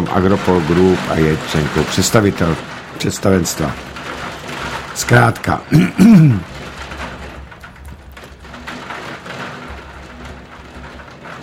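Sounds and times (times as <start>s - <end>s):
heavy rain hissing and pattering: 0.0s - 11.4s
speech: 0.1s - 4.0s, 5.0s - 6.5s
loud voice-like burst: 5.7s - 6.5s.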